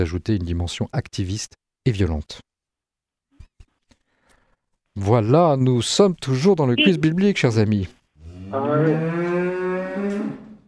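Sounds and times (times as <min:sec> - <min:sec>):
speech: 0:00.0 - 0:02.5, 0:05.0 - 0:09.3
cow mooing at milking time: 0:08.3 - 0:10.6.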